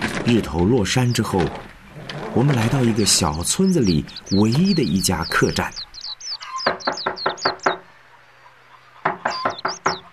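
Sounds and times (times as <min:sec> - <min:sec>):
speech: 0:00.3 - 0:01.7, 0:02.3 - 0:05.9
firm knocking on the wooden door of a small village inn after sunset: 0:06.6 - 0:07.8, 0:09.0 - 0:10.1.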